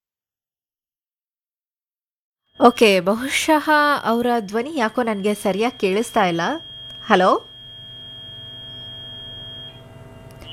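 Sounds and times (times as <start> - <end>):
speech: 2.6 - 7.5
high-pitched electronic tone as a phone call disconnects: 2.6 - 10.5.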